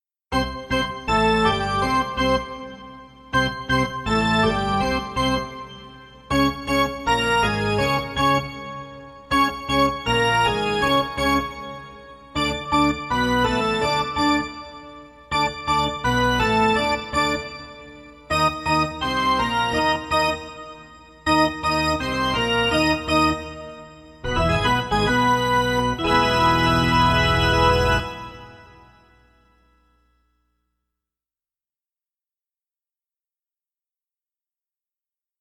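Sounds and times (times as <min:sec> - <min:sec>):
arena organ playing: 0:00.4 - 0:29.6.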